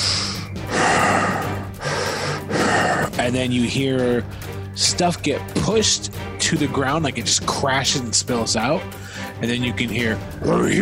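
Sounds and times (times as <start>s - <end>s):
voice imitating heavy breathing: 0.0s - 3.2s, 8.9s - 9.4s
speech: 3.3s - 10.8s.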